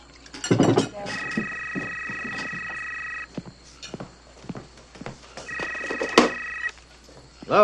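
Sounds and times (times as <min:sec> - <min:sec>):
telephone ringing in electronic bursts: 0:01.0 - 0:03.3, 0:05.5 - 0:06.7.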